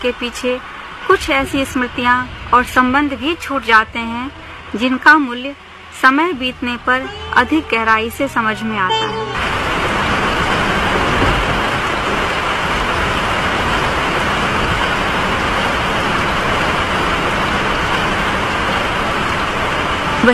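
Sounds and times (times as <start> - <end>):
speech: 0.0 - 9.6
heavy rain pouring: 0.0 - 20.3.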